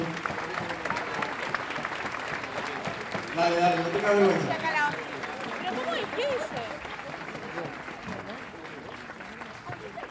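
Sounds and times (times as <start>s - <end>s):
crowd applauding an organizer at a gathering: 0.0s - 10.1s
speech: 3.4s - 4.7s.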